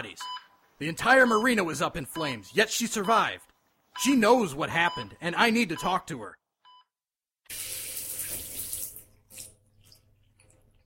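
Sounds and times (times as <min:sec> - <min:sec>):
speech: 0:00.0 - 0:06.4
hotel shower water running: 0:07.5 - 0:10.8.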